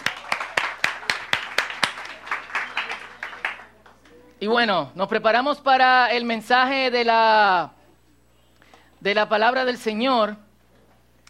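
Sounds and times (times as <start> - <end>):
audience clapping in rhythm: 0.0 - 4.2
speech: 4.4 - 7.8, 9.0 - 10.4.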